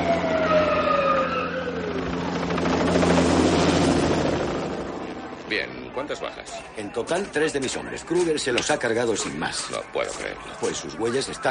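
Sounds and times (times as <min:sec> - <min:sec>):
police car siren: 0:00.0 - 0:04.1, 0:09.6 - 0:11.4
police helicopter rotor roar: 0:00.0 - 0:11.4
speech: 0:06.0 - 0:11.4.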